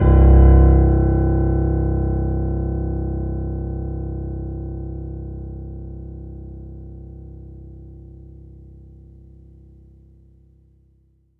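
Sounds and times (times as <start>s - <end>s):
synthesizer 16-foot piano note C1: 0.0s - 9.0s.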